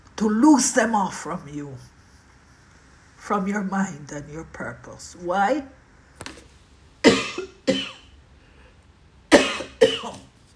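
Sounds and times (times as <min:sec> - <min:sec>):
speech: 0:00.2 - 0:02.0, 0:03.3 - 0:07.9
harsh chesty coughing: 0:07.0 - 0:08.1, 0:09.3 - 0:10.3.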